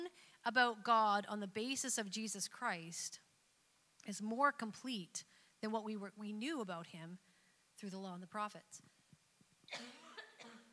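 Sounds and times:
speech: 0.4s - 3.2s, 4.0s - 7.2s, 7.8s - 9.0s, 9.7s - 10.6s
audience member coughing during church sermon: 9.7s - 10.7s.

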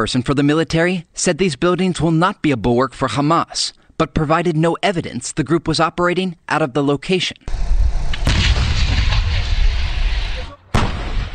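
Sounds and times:
speech: 0.0s - 8.5s
artillery shelling blasts in the Gaza Strip: 7.5s - 11.3s.

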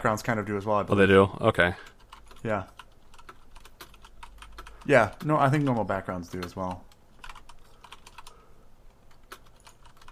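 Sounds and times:
speech: 0.0s - 2.8s, 4.8s - 6.9s
clicky mechanical keyboard typing: 1.8s - 8.4s, 9.1s - 10.0s.

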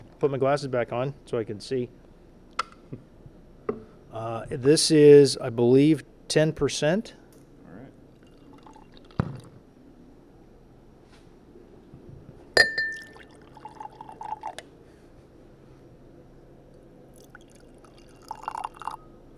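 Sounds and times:
speech: 0.2s - 2.0s, 4.2s - 7.2s
beer glugging and fizzing as poured into a glass: 8.2s - 9.5s, 12.6s - 14.7s, 17.1s - 19.2s
sharp glassy clink: 12.6s - 14.5s.

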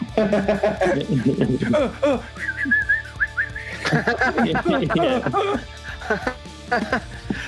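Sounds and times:
people chuckling: 0.0s - 7.4s
speech: 0.2s - 2.8s, 3.9s - 7.4s
person whistling a warbling bird call: 2.4s - 3.8s.

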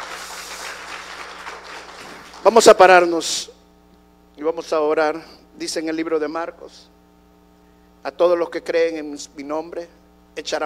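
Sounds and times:
audience applauding: 0.0s - 2.8s
speech: 2.4s - 3.5s, 4.4s - 6.9s, 8.0s - 10.6s.

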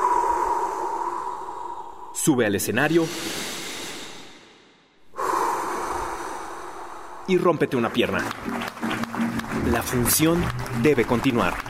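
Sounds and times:
deep heavy breathing: 0.0s - 2.2s, 2.9s - 7.3s
speech: 2.3s - 3.6s, 7.3s - 9.0s, 9.6s - 11.6s.

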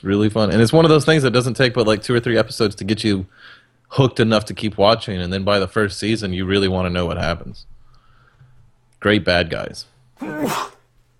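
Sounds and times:
speech: 0.0s - 7.7s, 9.0s - 10.8s
person sneezing: 10.2s - 10.9s.

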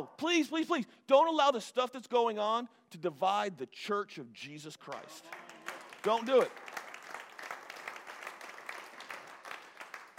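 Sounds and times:
speech: 0.0s - 6.7s
crowd clapping: 4.8s - 10.1s.

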